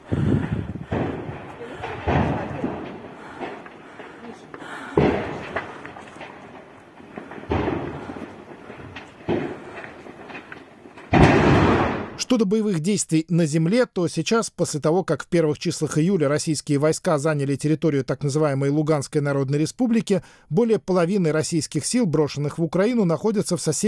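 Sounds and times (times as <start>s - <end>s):
heavy booming blasts of secondary ammunition explosions: 0.0s - 12.2s
speech: 12.3s - 23.8s.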